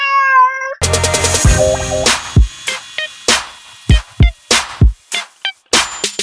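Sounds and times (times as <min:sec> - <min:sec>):
cat meowing: 0:00.0 - 0:00.8
loud punchy musical sting with sharp rhythmic drum hits: 0:00.8 - 0:04.9.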